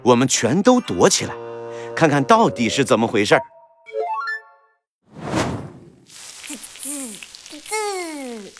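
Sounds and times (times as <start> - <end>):
speech: 0.0 - 3.5
fried egg sizzling in a hot frying pan: 6.0 - 8.5.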